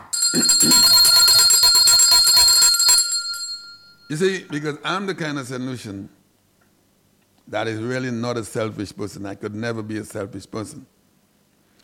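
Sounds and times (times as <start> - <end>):
bright metallic bell ringing: 0.0 - 4.2
speech: 0.3 - 0.9, 4.1 - 6.2, 7.5 - 10.9.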